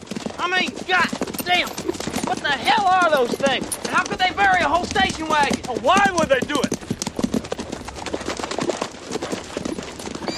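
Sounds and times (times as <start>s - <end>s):
horse hooves clip-clopping: 0.0s - 10.3s
speech: 0.4s - 6.8s
horse whinnying: 10.1s - 10.3s.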